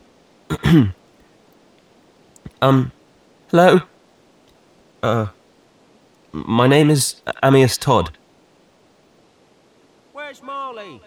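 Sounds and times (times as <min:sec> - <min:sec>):
person clearing throat: 0:00.5 - 0:01.0, 0:02.5 - 0:02.9, 0:03.6 - 0:03.8, 0:05.0 - 0:05.3
speech: 0:00.7 - 0:01.0, 0:02.6 - 0:03.9, 0:05.0 - 0:05.4, 0:06.3 - 0:08.2, 0:10.3 - 0:11.0.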